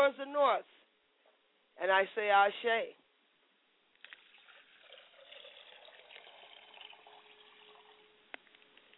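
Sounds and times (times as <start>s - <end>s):
speech: 0.0s - 0.8s, 1.8s - 3.0s
liquid poured out as a libation in a thin trickle: 4.0s - 8.2s.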